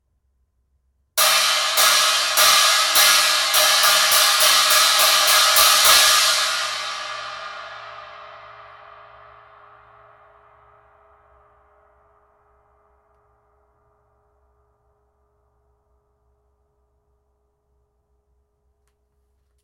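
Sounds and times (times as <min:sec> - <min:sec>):
21in ultra hammered China cymbal: 0:01.2 - 0:11.4.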